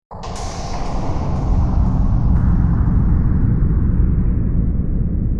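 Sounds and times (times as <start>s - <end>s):
object being dumped into space: 0.1s - 5.3s.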